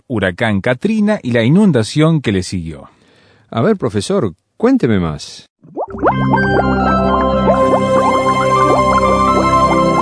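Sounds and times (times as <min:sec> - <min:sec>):
speech: 0:00.1 - 0:07.6
liquid bubbling: 0:05.6 - 0:10.0.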